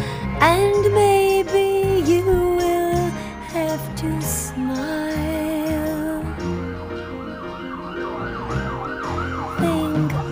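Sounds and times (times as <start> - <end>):
low rumble of traffic: 0.0 - 10.2
music: 0.0 - 10.2
wailing emergency siren: 2.0 - 10.2.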